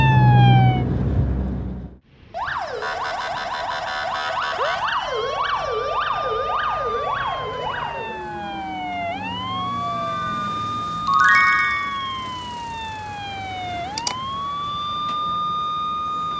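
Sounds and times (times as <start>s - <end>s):
fire truck siren wailing: 0.0s - 1.0s, 2.4s - 16.3s.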